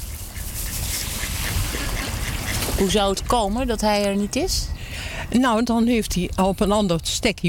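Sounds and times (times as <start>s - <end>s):
several ducks quacking in an overlapping chorus: 0.0s - 3.3s
steady outdoor noise: 0.0s - 7.4s
speech: 2.8s - 7.4s.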